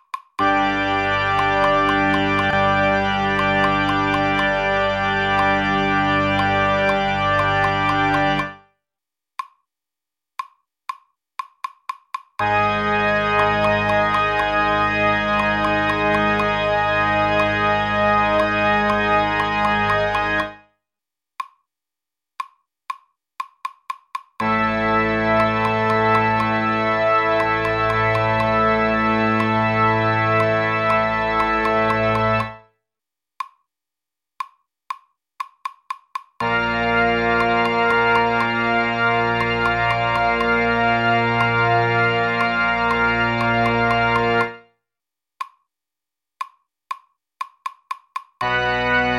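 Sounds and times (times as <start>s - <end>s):
tuba playing notes in G: 0.4s - 8.6s, 12.4s - 20.6s, 24.4s - 32.6s, 36.4s - 44.6s, 48.4s - 49.1s.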